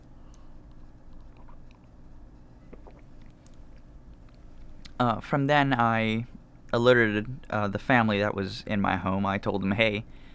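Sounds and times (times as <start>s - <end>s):
steady low hum: 0.0s - 10.3s
person sipping a drink with slurping and swallowing: 0.3s - 3.9s
speech: 5.0s - 10.3s.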